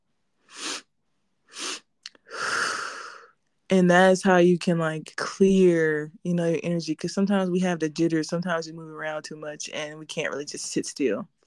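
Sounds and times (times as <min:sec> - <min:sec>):
person breathing in several times: 0:00.5 - 0:00.8, 0:01.5 - 0:03.3
person exhaling all at once: 0:00.5 - 0:00.8, 0:01.5 - 0:03.3
speech: 0:03.7 - 0:11.4.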